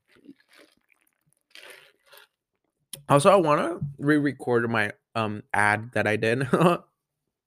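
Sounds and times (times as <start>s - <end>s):
person sipping an oat milk latte: 0.0s - 2.4s
slurping gulps of oat milk latte: 0.0s - 2.4s
speech: 3.1s - 6.9s.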